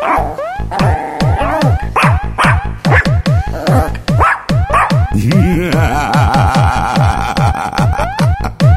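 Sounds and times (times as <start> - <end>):
mongrel dog whining howl: 0.0 - 1.8
mongrel dog barking: 0.0 - 5.1
laughter: 5.1 - 8.6.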